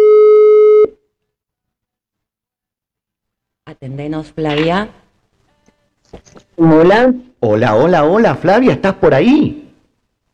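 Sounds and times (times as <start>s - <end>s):
telephone ringing tone beep on a call: 0.0s - 1.0s
speech: 3.8s - 5.0s, 6.1s - 9.6s.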